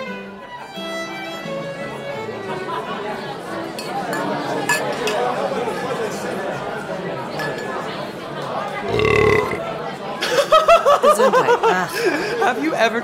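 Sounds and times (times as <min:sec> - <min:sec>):
chatter: 0:00.2 - 0:13.0
rhythmic, pulsing laughter: 0:02.3 - 0:03.6, 0:09.5 - 0:12.8
clinking dishes: 0:03.8 - 0:05.3, 0:07.4 - 0:07.9
loud, low, buzzy rhythmic fart: 0:08.9 - 0:09.6.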